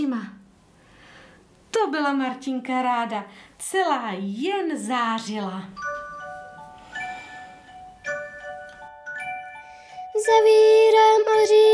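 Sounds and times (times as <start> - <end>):
speech: 0.0 - 0.4, 1.7 - 6.1, 10.3 - 11.7
small bells ringing: 5.8 - 11.3.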